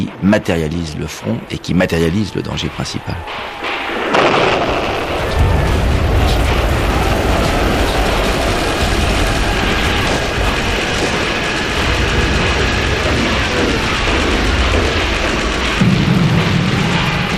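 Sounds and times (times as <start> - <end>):
speech: 0.1 - 3.8
barrage of artillery cannon fire: 3.2 - 17.3.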